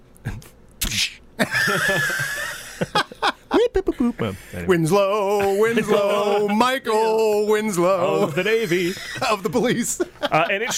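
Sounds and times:
voice imitating movie punch sounds: 0.3s - 1.2s
laughter: 1.4s - 4.1s, 5.4s - 10.7s
speech: 1.7s - 2.2s, 4.0s - 10.7s.

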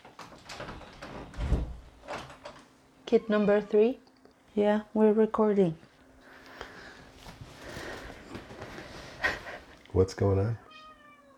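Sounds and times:
door being opened: 0.0s - 2.6s
speech: 3.1s - 4.0s, 4.6s - 5.8s, 10.0s - 10.6s.

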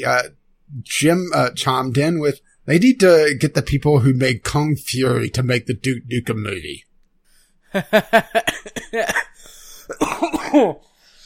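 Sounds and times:
speech: 0.0s - 6.9s, 7.7s - 9.3s, 9.9s - 10.9s
person laughing: 7.7s - 9.2s
person coughing after laughing: 8.3s - 10.9s.

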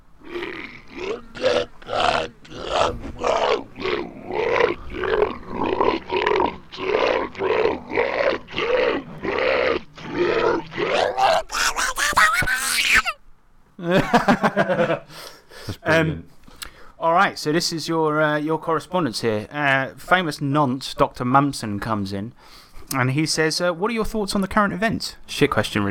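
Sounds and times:
slowed-down angry yelling of a boss: 0.0s - 13.2s
laughter: 11.5s - 13.2s, 13.8s - 15.1s
speech: 17.4s - 25.8s.

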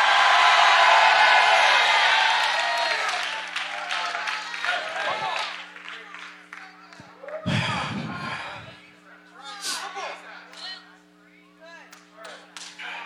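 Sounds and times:
audience shouting and cheering: 0.0s - 5.6s
audience applauding: 0.0s - 7.4s.

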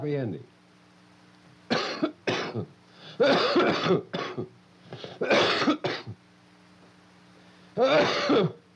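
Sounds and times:
narrator coughing fit with throat clearing: 1.7s - 6.2s, 7.8s - 8.6s.

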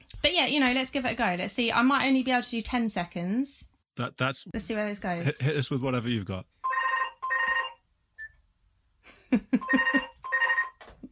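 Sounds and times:
speech: 0.4s - 6.6s, 9.3s - 10.0s
telephone ringing with trilling warbling tone: 6.6s - 7.8s, 9.6s - 10.8s.

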